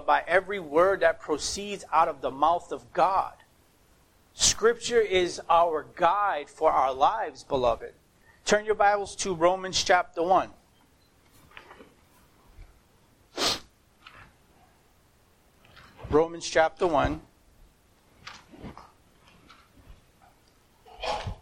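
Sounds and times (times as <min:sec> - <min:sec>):
speech: 0:00.1 - 0:03.4, 0:04.4 - 0:10.6, 0:16.1 - 0:17.3
sharp explosive sneezes: 0:13.3 - 0:13.7, 0:20.8 - 0:21.4.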